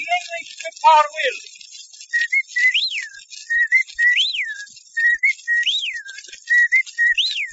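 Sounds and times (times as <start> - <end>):
speech: 0.8 - 1.6
person whistling an imitation of a wren's song: 2.1 - 7.5.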